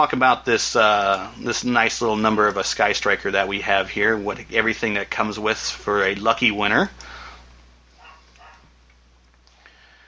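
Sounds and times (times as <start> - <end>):
speech: 0.0 - 7.1
low steady hum: 0.0 - 10.0
faint dog barks: 8.0 - 8.7.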